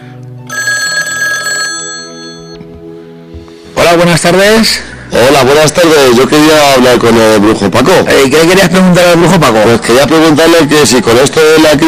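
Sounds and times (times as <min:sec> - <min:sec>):
telephone ringing with incoming call: 0:00.4 - 0:02.6
speech: 0:04.0 - 0:11.8.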